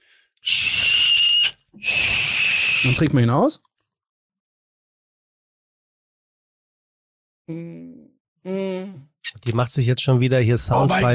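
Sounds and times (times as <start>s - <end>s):
person whistling at a bottle of German herbal liqueur: 0.4s - 3.0s
speech: 2.8s - 3.7s, 7.5s - 11.1s.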